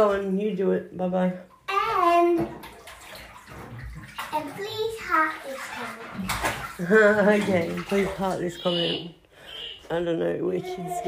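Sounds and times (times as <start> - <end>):
speech: 0.0 - 2.7, 4.3 - 9.2, 9.9 - 11.0
child splashing in bath water while washing red lipstick off: 1.4 - 9.2.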